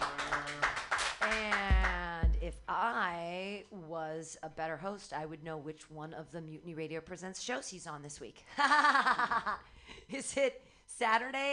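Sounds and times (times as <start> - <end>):
audience clapping: 0.0 - 2.4
speech: 2.7 - 11.5.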